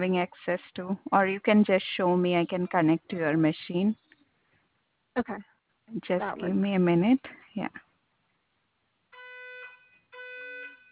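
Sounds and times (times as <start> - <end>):
speech: 0.0 - 4.0, 5.2 - 7.8
building fire alarm blaring in a drill: 9.2 - 10.8.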